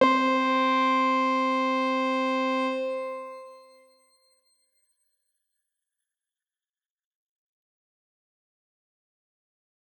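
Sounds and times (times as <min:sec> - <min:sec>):
soft granular synthesized note: 0:00.0 - 0:03.8.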